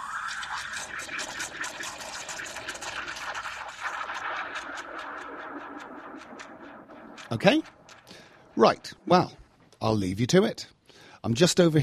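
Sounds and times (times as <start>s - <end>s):
coffee machine whirring and grinding: 0.0s - 4.2s
speech: 7.3s - 7.8s, 8.6s - 11.8s.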